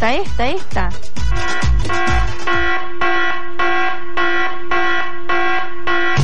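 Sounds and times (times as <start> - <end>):
speech: 0.0 - 3.3
loud harsh electronic alarm buzzer: 1.3 - 6.2.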